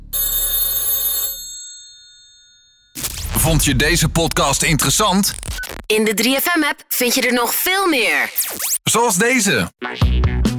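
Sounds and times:
telephone bell ringing: 0:00.0 - 0:03.0
speech: 0:03.4 - 0:10.4.

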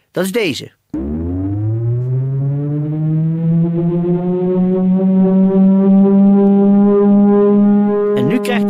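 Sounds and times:
speech: 0:00.2 - 0:00.8
short burst of noise: 0:01.0 - 0:06.1
all-clear warning siren: 0:01.0 - 0:08.6.

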